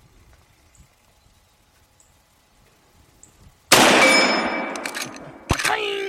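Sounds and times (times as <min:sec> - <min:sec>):
gunshots: 0:03.7 - 0:05.8.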